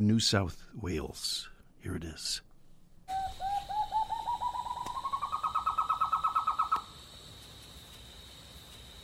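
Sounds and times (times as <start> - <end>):
speech: 0.0 - 2.5
White-throated Nightjar calling in Northern Rivers area, New South Wales, Australia: 3.1 - 7.0.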